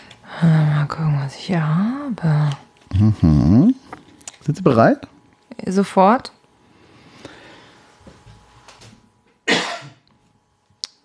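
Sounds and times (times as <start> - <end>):
speech: 0.4 - 3.8, 4.5 - 6.4
person coughing harshly: 9.5 - 10.0.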